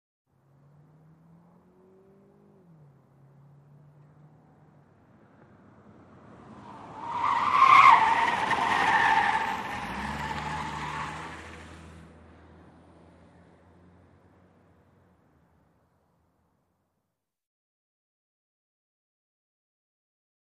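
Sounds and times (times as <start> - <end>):
sedan accelerating around a corner: 0.3 - 15.5.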